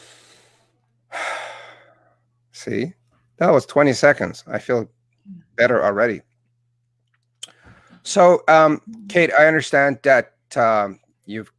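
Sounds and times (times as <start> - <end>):
soft airy breath during a guided breathing exercise: 0.0 - 2.2
speech: 2.6 - 6.3, 8.0 - 11.5.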